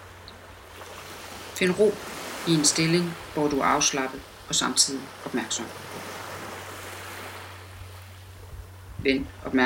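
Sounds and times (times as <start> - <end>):
low constant hum: 0.0 - 9.6
ocean waves rolling onto a beach: 0.0 - 9.6
speech: 1.6 - 6.1, 9.0 - 9.6.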